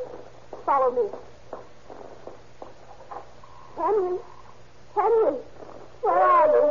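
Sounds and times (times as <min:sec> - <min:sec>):
speech: 0:00.7 - 0:01.3, 0:03.8 - 0:04.3, 0:05.0 - 0:06.6
dog howling: 0:05.0 - 0:06.6.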